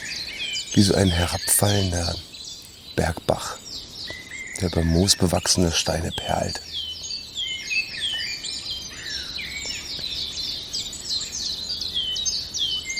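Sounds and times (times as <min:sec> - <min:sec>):
European robin singing a warbling song: 0:00.6 - 0:12.9
speech: 0:00.8 - 0:02.3, 0:04.6 - 0:06.7
soft hiss: 0:00.8 - 0:03.6, 0:04.6 - 0:06.9.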